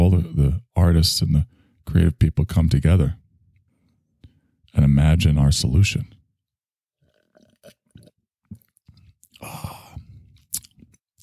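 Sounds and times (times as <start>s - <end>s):
speech: 1.0s - 3.2s, 4.7s - 6.2s
chewing while eating: 7.0s - 11.2s.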